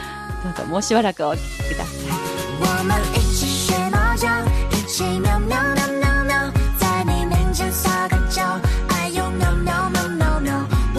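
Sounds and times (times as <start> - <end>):
musical backing: 0.0 - 10.9
speech: 0.4 - 3.5
singing voice imitating cat meows in a duet song: 1.3 - 3.2.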